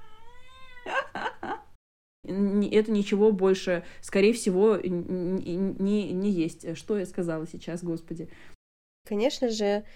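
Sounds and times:
cat meowing loudly: 0.0s - 0.9s
cat yowling harshly: 0.0s - 1.2s
speech: 2.3s - 9.9s.

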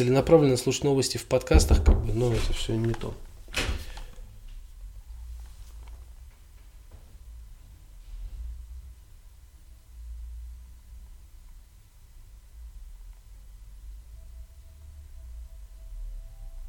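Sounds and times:
speech: 0.0s - 3.3s
sharp knocking on a door: 1.5s - 2.6s.

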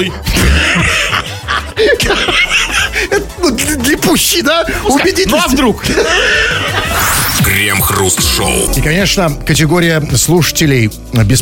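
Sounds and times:
speech: 0.0s - 0.8s, 3.8s - 11.3s
man imitating a harsh hacking smoker's cough: 0.3s - 0.9s
snickering laughs: 0.3s - 3.3s, 5.8s - 7.2s.

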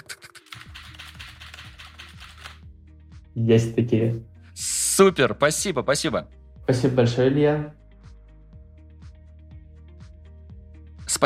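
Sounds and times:
mechanical keyboard clicking: 0.0s - 2.6s
speech: 3.4s - 7.8s.

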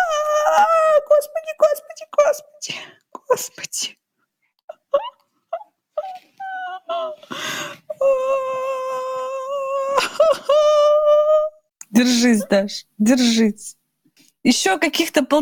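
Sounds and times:
woman whimpering: 0.0s - 1.2s, 4.7s - 12.6s
speech: 12.3s - 13.8s, 14.4s - 15.4s.

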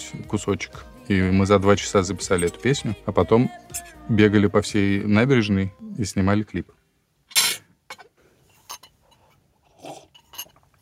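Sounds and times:
speech: 0.1s - 6.8s
dishes and cutlery clinking during breakfast: 2.2s - 2.9s, 7.3s - 10.7s.

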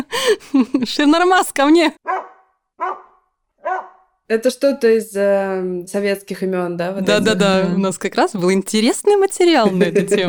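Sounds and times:
speech: 0.3s - 2.1s, 4.3s - 10.2s
dog barking: 2.0s - 4.2s
laughter: 9.6s - 10.2s.

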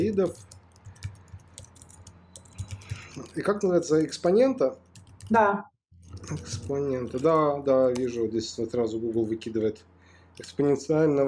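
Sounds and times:
speech: 0.0s - 0.6s, 3.2s - 5.7s, 6.3s - 11.2s
rapid uneven typing on a computer keyboard: 0.0s - 5.4s, 6.0s - 8.1s.

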